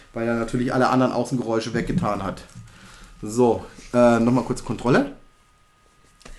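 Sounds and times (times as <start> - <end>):
computer cooling fan hum: 0.0 - 6.3
speech: 0.1 - 5.2.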